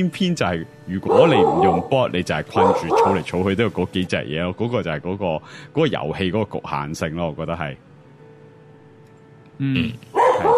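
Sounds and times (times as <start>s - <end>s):
speech: 0.0s - 7.9s, 9.6s - 10.2s
dog barking: 1.0s - 3.4s, 10.1s - 10.5s.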